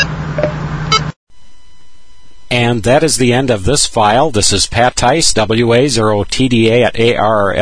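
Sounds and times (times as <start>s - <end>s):
low electronic beep from a radio transceiver menu: 0.0s - 2.7s
steady hum and hiss: 0.0s - 7.6s
speech: 2.5s - 7.6s.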